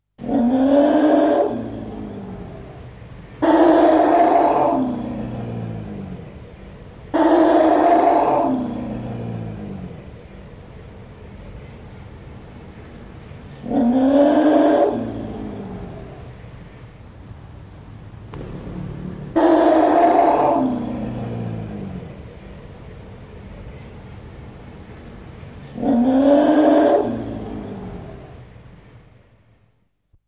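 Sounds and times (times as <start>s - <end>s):
animal roaring: 0.2s - 2.8s, 3.4s - 6.4s, 7.1s - 10.0s, 13.6s - 16.3s, 18.4s - 22.4s, 25.7s - 28.4s.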